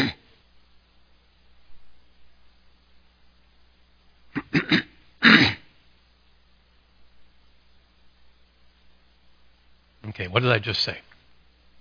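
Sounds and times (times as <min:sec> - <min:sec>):
throat clearing: 0:00.0 - 0:00.2, 0:04.3 - 0:05.7
speech: 0:10.2 - 0:11.1.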